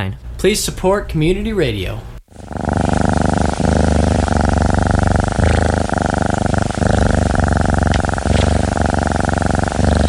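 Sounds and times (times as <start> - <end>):
speech: 0.0 - 2.6
domestic cat purring: 2.3 - 10.0.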